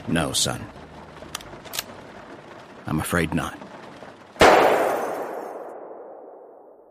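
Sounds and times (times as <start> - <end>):
speech: 0.0 - 0.8, 2.9 - 3.6
gunshot in an asylum: 4.4 - 6.6.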